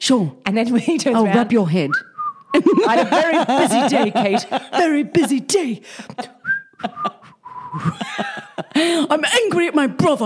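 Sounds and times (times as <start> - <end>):
speech: 0.0 - 7.1, 7.7 - 10.2
person whistling a short choppy phrase: 1.9 - 2.6, 6.4 - 8.0
laughter: 2.6 - 9.1.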